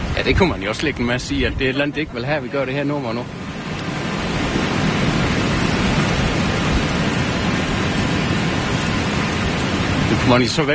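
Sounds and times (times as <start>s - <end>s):
strong wind roaring: 0.0s - 10.7s
speech: 0.2s - 3.4s, 10.3s - 10.7s.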